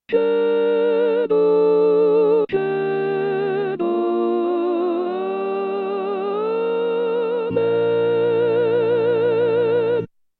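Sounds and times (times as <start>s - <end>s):
soprano voice singing: 0.0s - 10.1s.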